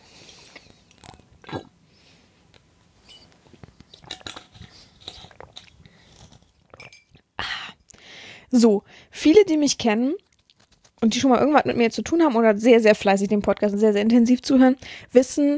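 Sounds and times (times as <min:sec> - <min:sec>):
person gulping from a bottle: 0:00.5 - 0:01.8, 0:03.1 - 0:07.4
speech: 0:08.5 - 0:10.2, 0:11.0 - 0:15.5.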